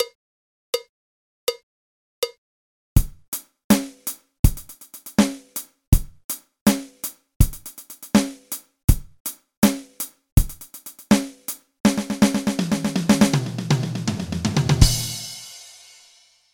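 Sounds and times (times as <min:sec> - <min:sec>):
eighth-note sextuplet rhythm: 0:03.0 - 0:15.4.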